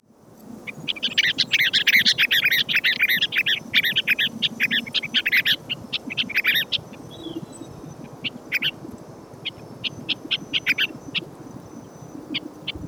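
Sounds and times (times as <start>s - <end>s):
Fluvicola nengeta calls: 0.6s - 12.8s.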